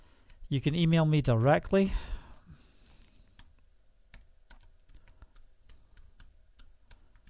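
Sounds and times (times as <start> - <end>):
speech: 0.5 - 2.1
fingers typing on a computer keyboard: 3.3 - 7.2.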